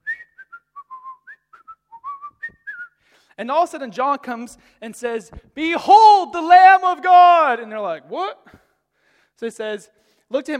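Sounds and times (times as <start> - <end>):
person whistling a lively bouncing melody: 0.0 - 3.1
speech: 3.4 - 8.5, 9.4 - 10.5.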